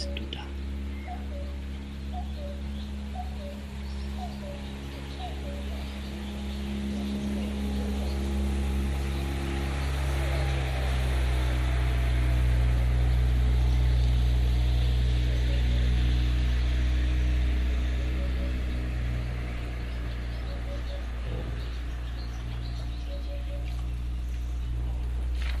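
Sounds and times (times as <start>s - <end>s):
boat motor droning: 0.0s - 25.5s.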